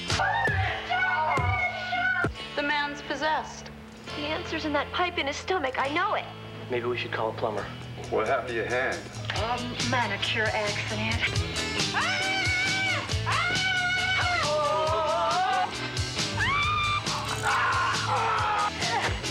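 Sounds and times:
several voices screaming horror-film screams: 0.1 - 2.3, 11.9 - 19.2
speech: 3.2 - 12.2.

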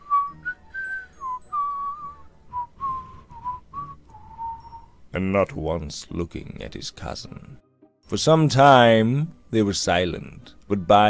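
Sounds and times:
man softly whistling a meandering tune: 0.0 - 5.0
brief breaths between whistled phrases: 2.9 - 4.7
speech: 5.2 - 11.0.

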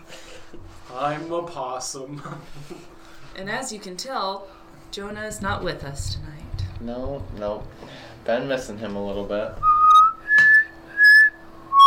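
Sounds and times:
speech: 1.0 - 9.7
person whistling a short tune: 9.6 - 11.8.

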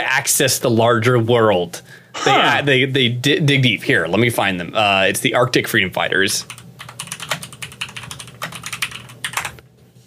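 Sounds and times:
speech: 0.0 - 6.6
typing on a computer keyboard: 6.4 - 9.6.

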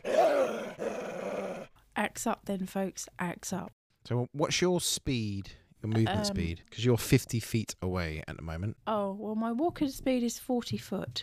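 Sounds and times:
wolf growling and snarling: 0.0 - 1.7
speech: 2.2 - 11.2.

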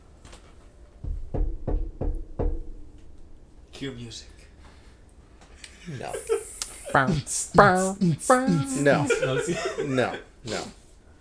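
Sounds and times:
firm knocking on a door as a sound effect: 1.0 - 3.0
speech: 3.8 - 4.4, 5.8 - 10.8
laughter: 5.6 - 10.4.

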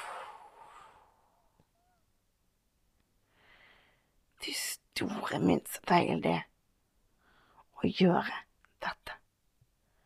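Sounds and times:
person exhaling after holding breath: 0.0 - 1.4
soft breath: 0.0 - 2.0, 3.2 - 4.2, 7.2 - 7.7
speech: 4.4 - 6.5, 7.8 - 9.0.

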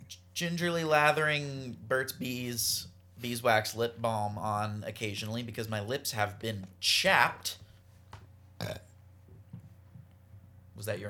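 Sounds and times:
quiet low hum: 0.0 - 11.0
speech: 0.4 - 7.6, 8.6 - 8.8, 10.8 - 11.0
person burping: 8.6 - 9.0.

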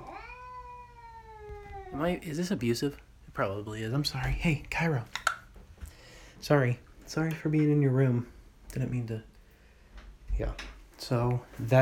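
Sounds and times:
large bobcat meowing: 0.0 - 2.0
speech: 1.9 - 5.2, 6.4 - 9.3, 10.4 - 11.7.

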